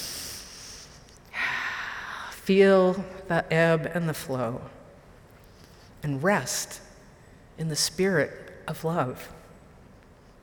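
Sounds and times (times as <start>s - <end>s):
deep breath taken during a calm moment: 0.0s - 2.3s
speech: 2.5s - 4.8s, 6.0s - 6.8s, 7.6s - 9.4s.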